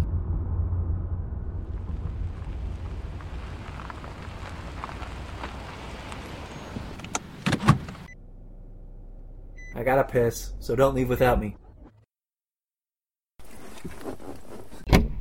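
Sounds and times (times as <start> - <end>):
car engine and road rumble while driving and pulling over: 0.0 - 12.0
speech: 9.8 - 11.6.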